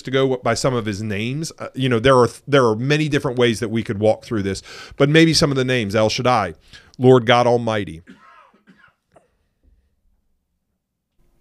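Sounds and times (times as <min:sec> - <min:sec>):
speech: 0:00.0 - 0:08.2
muffled coughs close to the microphone: 0:08.0 - 0:09.4.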